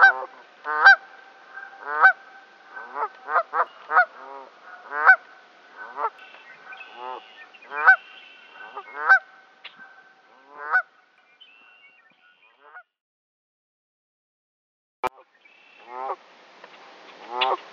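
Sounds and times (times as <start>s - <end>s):
Canada goose honking: 0.0s - 5.2s, 5.8s - 10.9s, 17.2s - 17.6s.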